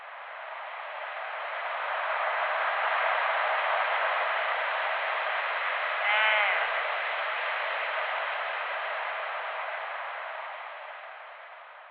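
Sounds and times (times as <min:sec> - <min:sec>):
hissy radio-like static: 0:00.0 - 0:11.0
bighorn sheep bleat: 0:06.0 - 0:06.7.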